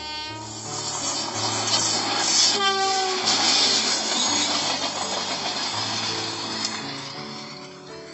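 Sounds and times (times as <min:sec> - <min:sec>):
train horn blast: 0:00.0 - 0:00.6, 0:02.4 - 0:03.4
train rumbling past: 0:00.0 - 0:08.1.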